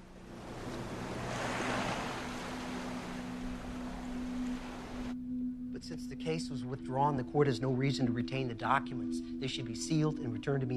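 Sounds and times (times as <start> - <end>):
foaming waves washing against shore pillars: 0.0 - 5.1
speech: 5.8 - 10.7.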